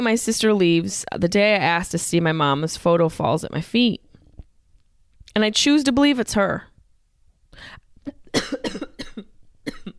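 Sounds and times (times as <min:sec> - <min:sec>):
speech: 0:00.0 - 0:04.1, 0:05.3 - 0:06.7
person coughing while choking: 0:08.1 - 0:09.9.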